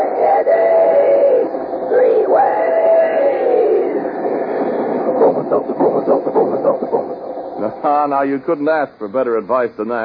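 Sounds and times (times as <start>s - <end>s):
continuous rushing hiss of steam train: 0.0s - 10.0s
steam train sound effect chugging: 3.8s - 8.1s
speech: 8.0s - 10.0s.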